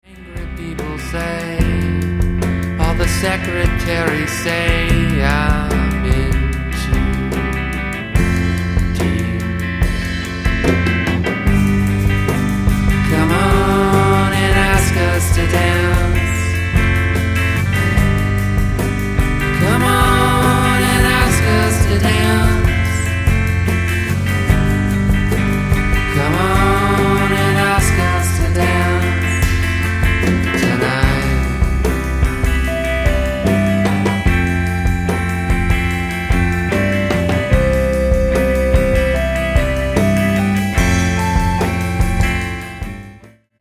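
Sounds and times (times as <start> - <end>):
rock drums: 0.0 - 43.6.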